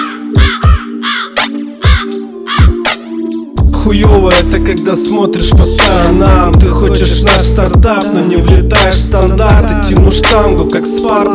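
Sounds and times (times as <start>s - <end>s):
crow cawing: 0.0s - 2.8s
steady low musical drone: 0.0s - 11.3s
deep thumping beats: 0.4s - 0.9s, 1.8s - 3.0s, 3.6s - 4.8s, 5.4s - 10.8s
speech: 3.8s - 11.3s.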